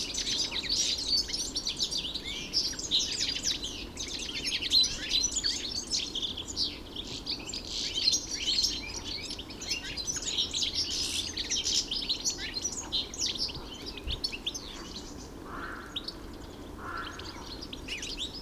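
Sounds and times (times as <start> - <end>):
European goldfinch twittering song in Hofgarten park, Landshut: 0.0 - 18.4
faint background hiss: 0.0 - 18.4.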